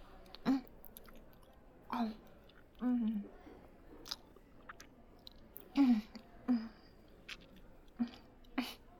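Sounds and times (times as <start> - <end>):
person chewing while eating a meal: 0.3 - 1.6, 2.2 - 2.8, 4.0 - 6.2, 7.1 - 8.6.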